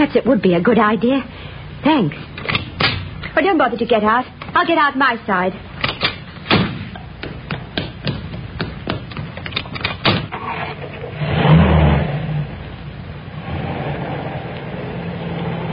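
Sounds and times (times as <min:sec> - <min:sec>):
speech: 0:00.0 - 0:02.6, 0:03.4 - 0:05.7
clicks and thuds: 0:05.8 - 0:10.3
car engine turning over and revving as the vehicle pulls away: 0:11.1 - 0:15.7.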